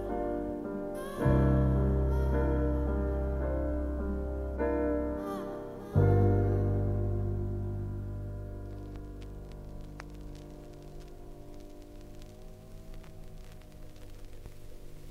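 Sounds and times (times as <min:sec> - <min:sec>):
low hum: 0:00.0 - 0:15.0
vinyl crackle and static from a record needle: 0:00.0 - 0:15.0
faint pops: 0:08.6 - 0:15.0.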